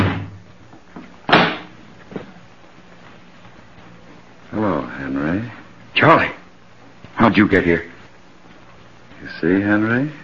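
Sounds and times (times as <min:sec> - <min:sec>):
front door slamming shut: 0:00.0 - 0:00.4, 0:01.3 - 0:01.8
speech: 0:05.0 - 0:06.4, 0:07.2 - 0:07.9, 0:09.4 - 0:10.2.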